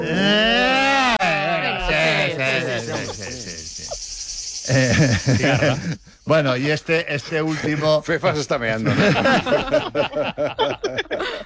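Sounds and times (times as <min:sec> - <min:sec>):
laughter: 0:00.0 - 0:03.9, 0:04.7 - 0:06.1, 0:07.2 - 0:11.4
person vocally imitating a cricket or cicada: 0:00.0 - 0:07.5
speech: 0:04.7 - 0:11.4.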